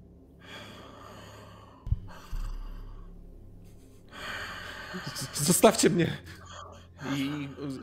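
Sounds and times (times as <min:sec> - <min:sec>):
slow heavy breathing from the shadows along the walls of a nave: 0:00.4 - 0:07.8
faint low thump: 0:01.9 - 0:03.8
speech: 0:04.9 - 0:06.4.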